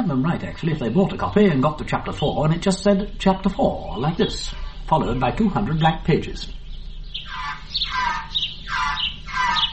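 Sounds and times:
bird squawking with harsh rasping cries: 0.0 - 9.7
speech: 0.1 - 6.6.

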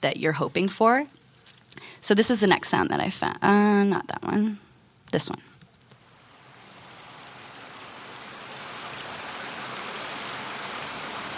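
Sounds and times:
speech: 0.0 - 1.2, 1.8 - 5.5
flowing water of a stream or river rushing: 6.0 - 11.3.

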